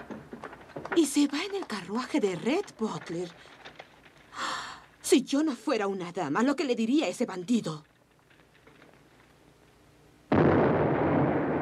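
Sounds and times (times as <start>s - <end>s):
speech: 1.0s - 3.7s, 5.1s - 7.9s
cannon fire during the bombardment of a city: 10.3s - 11.6s.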